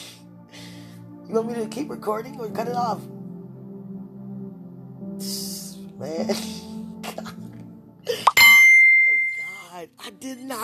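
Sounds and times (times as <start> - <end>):
speech: 1.3 - 3.2, 6.0 - 6.6
phone notification chime: 8.3 - 9.6.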